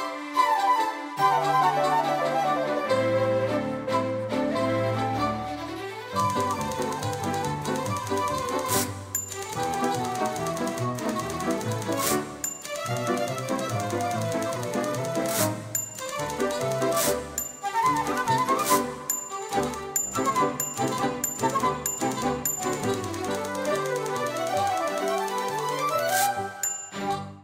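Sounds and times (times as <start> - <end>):
busy tuneful musical backing: 0.0 - 27.4
typewriter keys clacking: 6.2 - 27.0.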